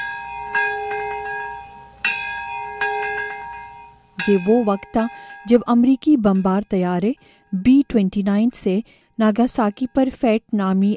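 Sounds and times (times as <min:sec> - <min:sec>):
bells ringing at a memorial ceremony in Peace Park in Nagasaki: 0:00.0 - 0:08.0
speech: 0:04.2 - 0:10.9.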